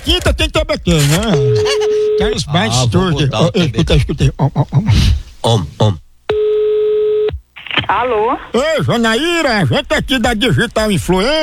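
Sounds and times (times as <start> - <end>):
speech: 0.1 - 6.0, 7.9 - 11.4
telephone call tone beep: 1.4 - 2.4, 6.3 - 7.4.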